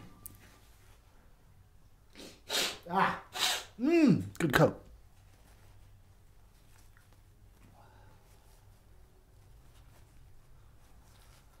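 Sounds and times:
sniffle and nose-clearing blow: 0:02.1 - 0:03.8
speech: 0:04.0 - 0:04.8.

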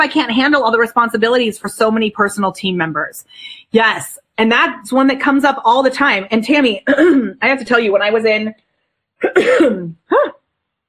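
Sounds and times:
speech: 0:00.0 - 0:08.6, 0:09.2 - 0:10.4
person coughing: 0:06.8 - 0:07.4, 0:09.2 - 0:10.4
person clearing throat: 0:06.9 - 0:07.4, 0:09.2 - 0:10.4.

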